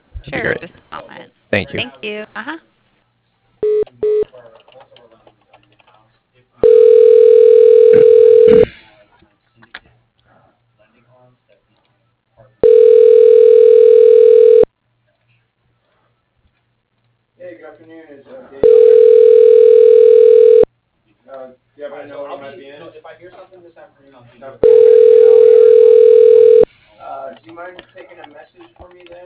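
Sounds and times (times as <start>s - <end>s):
speech: 0.2s - 2.7s, 17.4s - 19.3s, 21.3s - 26.1s, 27.0s - 29.2s
telephone line ringback tone while a call is transferred to voicemail: 6.6s - 8.7s, 12.6s - 14.7s, 18.6s - 20.7s, 24.6s - 26.7s.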